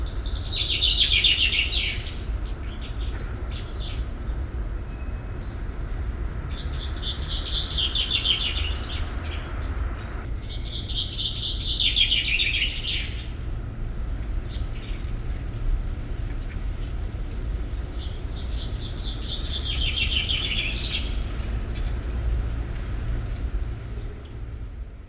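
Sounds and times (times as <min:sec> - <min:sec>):
common chaffinch Fringilla coelebs singing: 0:00.0 - 0:22.3
constant low rumble: 0:02.1 - 0:25.0.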